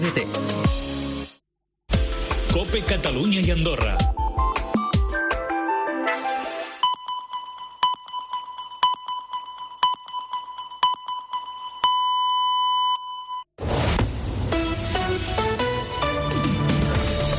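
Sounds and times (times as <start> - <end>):
speech: 0.0 - 0.5, 2.6 - 4.2
bursts of music: 0.0 - 7.7, 14.4 - 17.3
radio time signal pips ending in a longer tone: 6.8 - 13.5.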